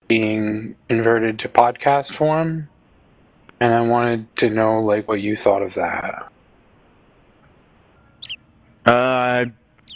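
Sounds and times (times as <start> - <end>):
speech: 0.1 - 2.7, 3.6 - 6.3, 8.8 - 9.9
steady low hiss: 0.1 - 9.9
high bright bird chirps outside: 7.9 - 8.4.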